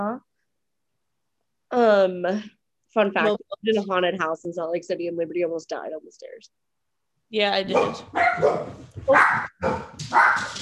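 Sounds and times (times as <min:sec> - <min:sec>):
speech: 0:01.8 - 0:06.7, 0:07.3 - 0:10.6
dogs barking angrily: 0:07.7 - 0:10.6.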